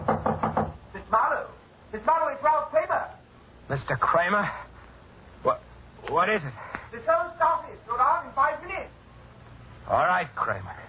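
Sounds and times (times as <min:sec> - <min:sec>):
knocks on a door: 0:00.0 - 0:00.8
speech: 0:01.9 - 0:04.6, 0:05.4 - 0:09.0, 0:09.9 - 0:10.8.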